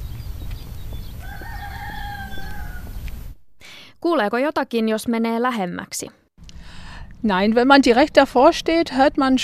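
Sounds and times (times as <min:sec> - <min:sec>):
neighbour's rooster crowing: 0:01.1 - 0:03.1
speech: 0:04.0 - 0:06.2, 0:07.2 - 0:09.4.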